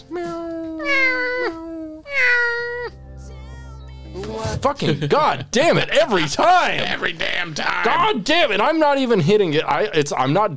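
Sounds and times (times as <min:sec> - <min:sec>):
cat meowing: 0:00.0 - 0:03.0
speech: 0:04.6 - 0:10.5.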